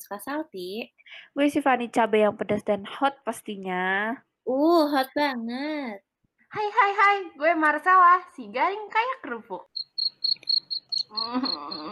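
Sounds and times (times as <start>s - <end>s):
speech: 0.1s - 9.7s, 11.1s - 11.9s
cricket chirping: 9.8s - 11.9s.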